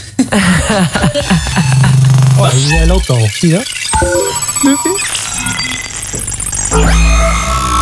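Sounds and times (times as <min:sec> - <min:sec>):
laughter: 0:00.2 - 0:02.2
speech: 0:00.2 - 0:07.6
busy electronic start-up jingle for a time machine: 0:02.4 - 0:07.1.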